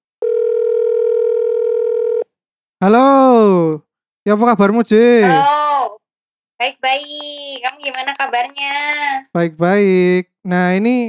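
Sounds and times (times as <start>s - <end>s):
telephone ringback tone: 0.2s - 2.3s
speech: 2.8s - 5.6s, 6.6s - 11.0s.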